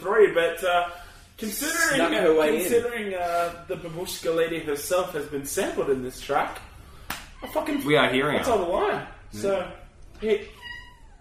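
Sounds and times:
speech: 0.0s - 6.7s, 7.4s - 10.6s
cat meowing: 10.4s - 11.1s.

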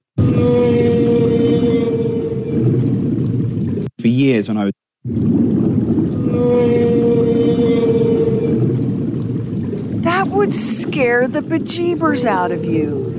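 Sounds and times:
mother blue whale exhaling: 0.2s - 3.8s, 5.1s - 10.1s
speech: 4.5s - 4.7s, 10.4s - 13.1s.

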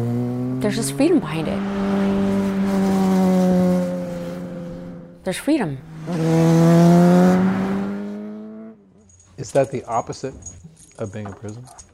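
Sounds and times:
speech: 0.0s - 1.8s, 5.3s - 6.7s, 9.4s - 11.9s
motorcycle engine shifting into gear and accelerating away: 0.0s - 9.0s.

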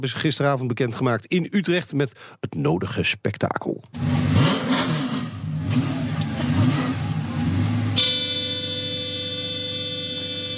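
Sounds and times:
speech: 0.0s - 4.6s
car engine revving and idling: 4.0s - 8.1s
thin feeble car horn honking: 8.0s - 10.5s.

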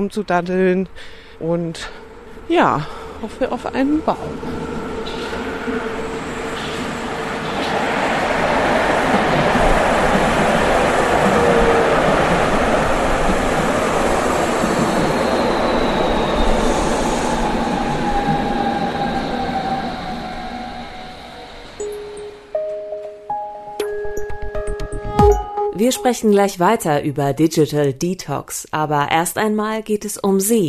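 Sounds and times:
speech: 0.0s - 4.8s, 25.8s - 30.6s
subway train wheels rumbling on track: 0.0s - 21.8s
subway car chiming tones: 21.8s - 26.5s.

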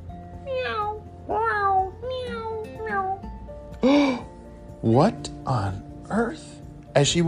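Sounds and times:
house cat meowing: 0.5s - 3.3s
speech: 4.8s - 7.2s.

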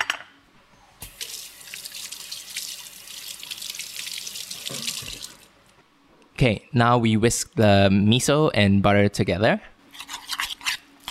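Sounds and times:
running tap water at a kitchen sink as hands are washed: 1.0s - 5.5s
speech: 6.4s - 9.7s.

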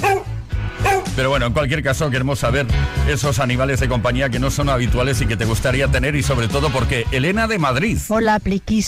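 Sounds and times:
small dog giving high-pitched yappy barks: 0.0s - 1.2s
speech: 1.2s - 8.8s.

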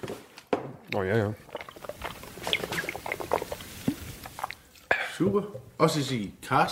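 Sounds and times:
speech: 0.9s - 1.5s, 5.2s - 6.7s
liquid rinsed in a mouth: 0.9s - 5.0s.

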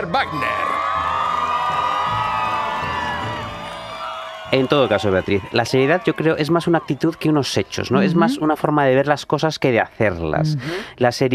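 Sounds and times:
speech: 0.0s - 1.2s, 4.5s - 11.3s
crowd cheering and shouting with excitement: 0.0s - 8.6s.

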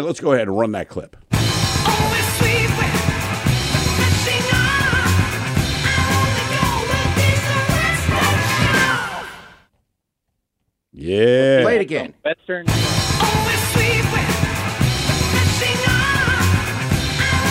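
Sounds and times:
speech: 0.0s - 1.2s, 11.1s - 14.5s
loud dense rock music with a driving beat: 1.3s - 9.6s, 12.7s - 17.5s
distorted guitars: 1.4s - 9.3s, 12.7s - 17.5s.

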